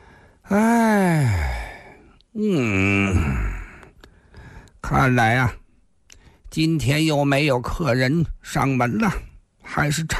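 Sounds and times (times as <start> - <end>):
speech: 0.5 - 0.7, 4.9 - 5.6, 6.5 - 10.1
man groaning in a long stretch and yawn: 0.5 - 3.9.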